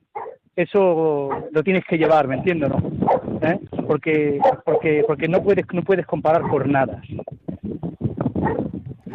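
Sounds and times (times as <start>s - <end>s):
dog at a circus barking in short yaps: 0.1s - 0.4s, 1.3s - 2.4s, 3.0s - 3.3s, 4.4s - 5.5s, 6.3s - 6.7s, 8.4s - 9.1s
speech: 0.6s - 7.3s, 8.4s - 9.1s.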